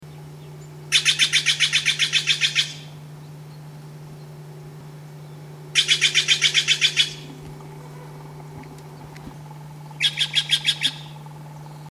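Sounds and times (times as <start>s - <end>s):
Steller's jay calling: 0.8s - 3.0s, 5.4s - 11.7s.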